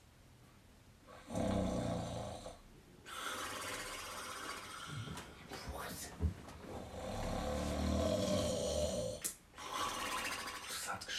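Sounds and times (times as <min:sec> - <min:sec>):
huge animal snoring in a cave: 0:01.1 - 0:05.1, 0:06.8 - 0:10.8.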